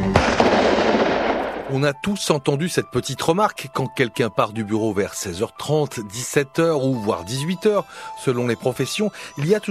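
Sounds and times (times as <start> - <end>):
sharp gunshots: 0.1 - 1.9
speech: 1.8 - 9.6.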